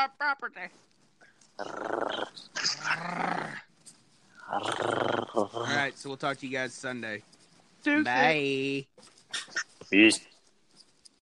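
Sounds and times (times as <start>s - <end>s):
speech: 0.0s - 0.9s, 1.6s - 3.6s, 4.5s - 10.3s
dog growling: 1.6s - 3.7s, 4.4s - 5.9s.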